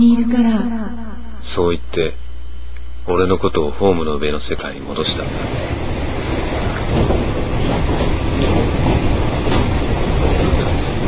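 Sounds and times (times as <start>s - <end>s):
speech: 0.1s - 0.8s, 1.5s - 2.2s, 3.1s - 5.9s
commuter train running on rails: 4.4s - 11.0s.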